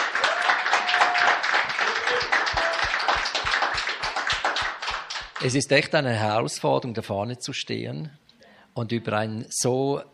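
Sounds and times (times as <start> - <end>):
crowd applauding with dense clapping: 0.0 - 5.6
speech: 5.4 - 8.2, 8.8 - 10.1.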